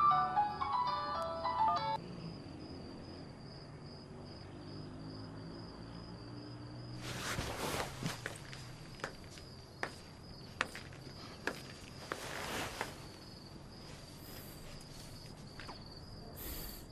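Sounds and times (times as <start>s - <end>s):
mobile phone electronic ringtone melody: 0.0s - 2.0s
rustling and shuffling: 7.0s - 16.1s.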